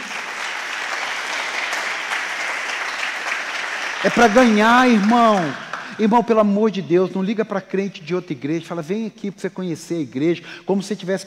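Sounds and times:
audience applauding: 0.0s - 6.2s
speech: 4.0s - 11.2s.

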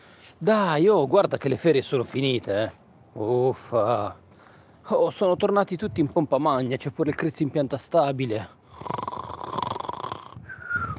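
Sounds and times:
speech: 0.4s - 4.2s, 4.8s - 9.0s
sleeping person snoring: 8.7s - 10.4s.

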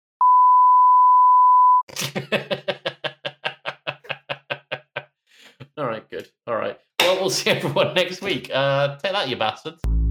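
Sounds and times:
censor bleep tone: 0.2s - 1.8s
laughter: 1.9s - 5.1s
speech: 2.0s - 2.5s, 7.3s - 9.9s.

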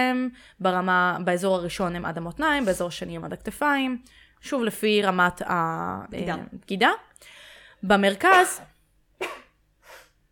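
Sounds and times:
speech: 0.0s - 9.4s
sharp sneeze: 9.2s - 10.2s.

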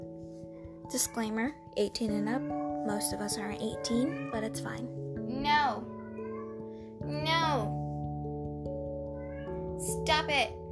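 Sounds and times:
speech: 0.9s - 5.9s, 7.1s - 7.8s, 9.8s - 10.6s
cat meowing in a long drawn-out call: 5.6s - 6.7s, 9.1s - 9.7s.

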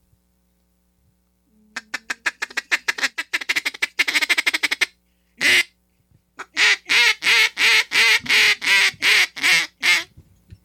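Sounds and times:
double reed duck call being blown: 1.8s - 5.8s, 6.4s - 10.1s.

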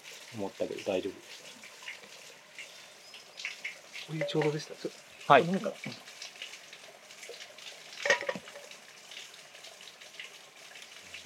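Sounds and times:
babbling stream of flowing water murmuring: 0.0s - 11.2s
speech: 0.3s - 1.6s, 4.1s - 6.1s
brief louder splash or clink: 4.1s - 4.6s, 8.0s - 8.6s.

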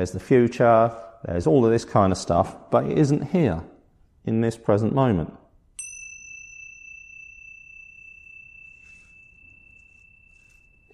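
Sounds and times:
speech: 0.0s - 5.4s
bell struck with a clear metallic tone: 5.8s - 10.9s.

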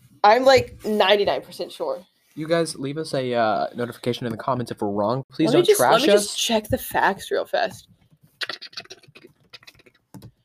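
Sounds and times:
speech: 0.2s - 8.0s
people typing on a computer keyboard: 7.9s - 10.4s.

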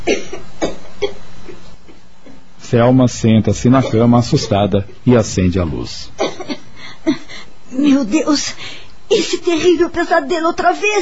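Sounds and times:
woman coughing harshly on waking from pressure on her throat: 0.0s - 1.2s, 3.8s - 4.6s, 6.2s - 7.3s
speech: 2.7s - 6.3s, 7.1s - 11.0s.

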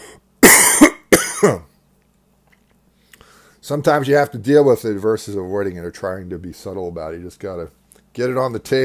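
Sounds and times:
throat clearing and coughing from someone with a scratchy throat: 0.4s - 1.8s
speech: 1.4s - 1.7s, 3.7s - 8.8s.

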